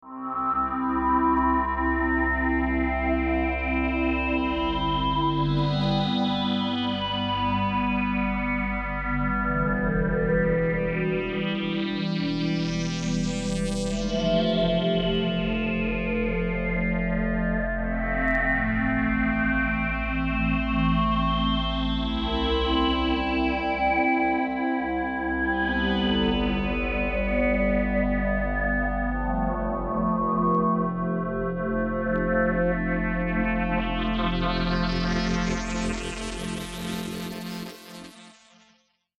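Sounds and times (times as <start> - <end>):
mod synth pad: 0.1 - 38.2.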